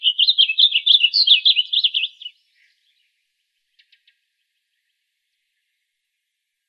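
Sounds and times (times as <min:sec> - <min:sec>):
Blue grosbeak warbled song in Arizona: 0:00.0 - 0:03.1, 0:03.7 - 0:04.2.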